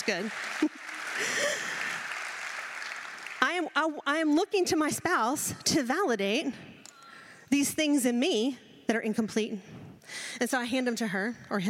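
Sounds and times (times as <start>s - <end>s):
speech: 0.0s - 1.4s, 3.6s - 6.8s, 7.5s - 11.6s
audience clapping: 0.0s - 4.0s.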